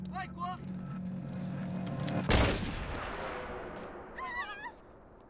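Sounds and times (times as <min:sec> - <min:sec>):
speech: 0:00.2 - 0:01.0
single loud gunshot in a Portuguese-dubbed film scene: 0:02.3 - 0:04.6.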